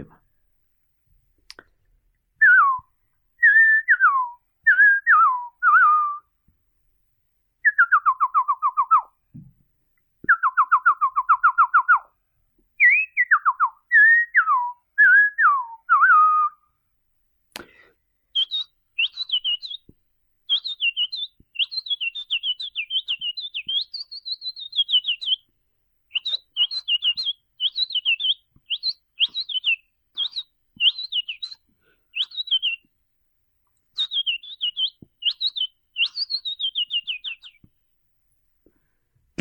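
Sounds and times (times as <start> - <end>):
person whistling an imitation of mockingbird and coachichi songs: 2.4 - 6.4, 7.6 - 9.2, 10.3 - 12.1, 12.8 - 16.7, 17.6 - 19.9, 20.5 - 25.5, 26.1 - 32.9, 34.0 - 37.7.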